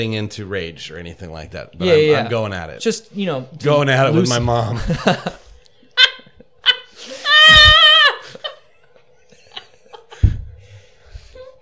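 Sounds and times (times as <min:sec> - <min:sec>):
speech: 0:00.0 - 0:05.4
short loud high-pitched human scream: 0:07.2 - 0:08.2
dull thump: 0:10.2 - 0:10.6.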